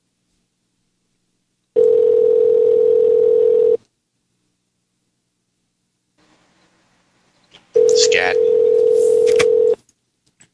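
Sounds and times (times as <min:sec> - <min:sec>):
telephone ringing out on an unanswered call: 0:01.8 - 0:03.8, 0:07.8 - 0:09.8.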